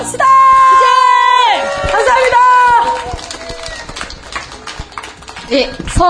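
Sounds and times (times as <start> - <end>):
theater festival audience cheering: 0.2 - 5.6
people whooping: 0.3 - 5.0
theater festival audience applause: 0.6 - 6.0.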